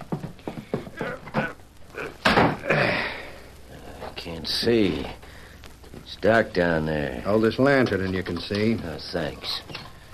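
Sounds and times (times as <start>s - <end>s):
wooden thumps: 0.0s - 1.6s, 2.2s - 2.6s
speech: 4.4s - 5.2s, 6.2s - 9.8s.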